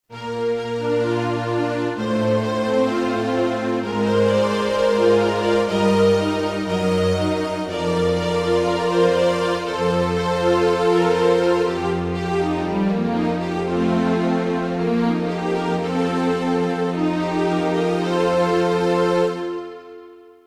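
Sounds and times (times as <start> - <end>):
strings playing allegro: 0.1 - 20.4.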